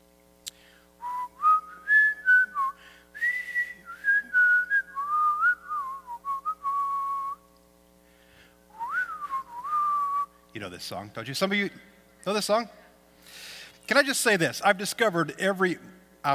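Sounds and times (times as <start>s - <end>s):
person whistling the opening melody of a song: 1.0s - 7.4s, 8.8s - 10.3s
speech: 10.6s - 12.8s, 13.9s - 16.3s.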